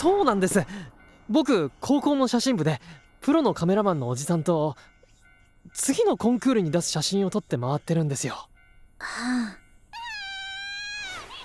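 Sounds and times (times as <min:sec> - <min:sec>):
speech: 0:00.0 - 0:04.9, 0:05.6 - 0:09.6
baby wailing, upset by a stranger's voice: 0:09.1 - 0:11.4.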